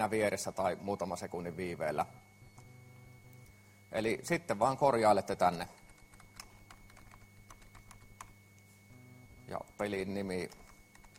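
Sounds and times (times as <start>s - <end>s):
speech: 0.0s - 2.4s, 3.9s - 5.8s, 9.5s - 10.6s
steady low electrical hum: 0.0s - 11.1s
typing on a computer keyboard: 5.8s - 8.3s, 10.5s - 11.1s.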